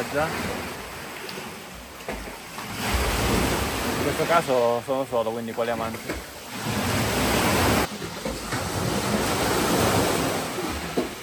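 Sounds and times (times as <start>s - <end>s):
sea waves surging through a coastal sea cave in Calabria Italy: 0.0s - 11.2s
speech: 0.1s - 0.8s, 4.1s - 6.8s.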